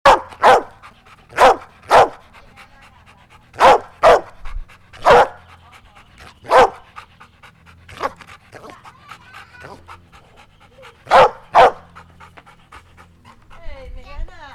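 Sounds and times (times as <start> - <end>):
tied-up dog barking in La Plata: 0.0 - 2.3, 3.5 - 4.4, 5.0 - 5.6, 6.2 - 7.1, 7.9 - 8.8, 10.8 - 12.1.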